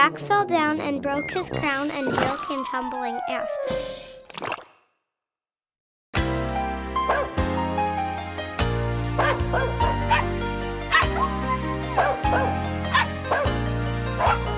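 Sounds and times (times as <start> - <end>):
speech: 0.0 - 4.6
instrumental music with a deep sustained bass: 6.2 - 14.5
small dog barking and yipping in short high bursts: 9.2 - 10.3, 10.9 - 13.5.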